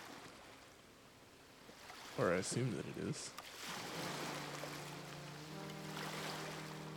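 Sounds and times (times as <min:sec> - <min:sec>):
soft ocean waves washing: 0:00.0 - 0:06.9
speech: 0:02.2 - 0:03.8
low sustained humming drone: 0:03.8 - 0:06.9.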